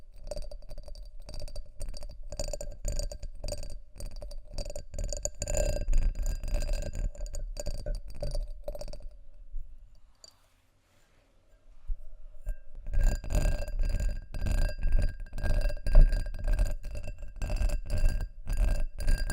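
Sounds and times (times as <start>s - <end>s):
dry scratching and tapping on textured glass: 0.1s - 9.2s, 12.4s - 19.3s
thin ringing tone: 12.4s - 13.4s.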